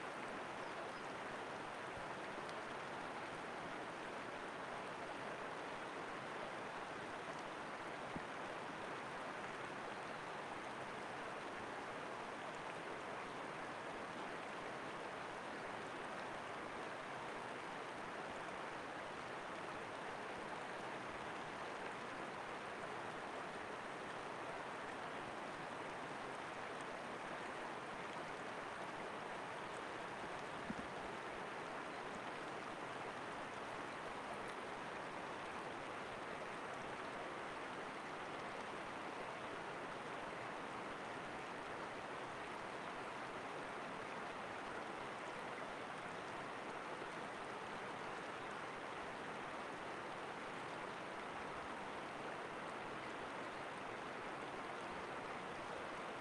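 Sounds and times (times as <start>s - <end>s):
river flowing: 0.0s - 56.1s
birds: 0.4s - 1.2s.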